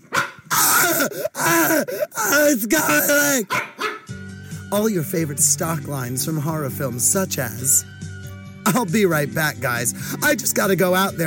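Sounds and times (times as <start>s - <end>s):
dog barking and snarling ferociously while attacking a man: 0.0s - 4.1s
speech: 1.0s - 3.8s, 4.7s - 8.0s, 8.7s - 11.2s.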